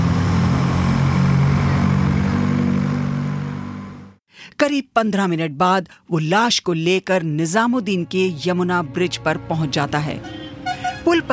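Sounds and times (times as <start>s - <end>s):
Maruti 800 car engine revving as it speeds away: 0.0s - 4.2s
speech: 4.6s - 10.4s, 11.0s - 11.3s.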